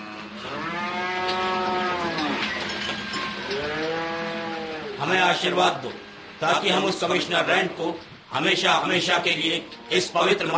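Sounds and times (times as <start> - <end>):
buffalo lowing: 0.0 - 5.0
speech: 5.1 - 10.5.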